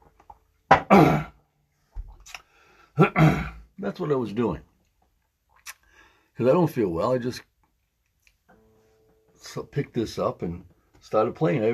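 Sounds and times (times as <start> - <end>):
person clearing throat loudly: 0.7 - 1.4, 3.0 - 3.7
speech: 3.0 - 4.7, 6.4 - 7.5, 9.5 - 11.7.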